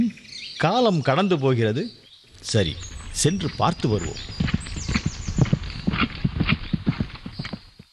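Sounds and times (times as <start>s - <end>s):
speech: 0.1s - 4.5s
Ashvamedha sacrificial horse hooves clip-clopping: 2.3s - 7.9s.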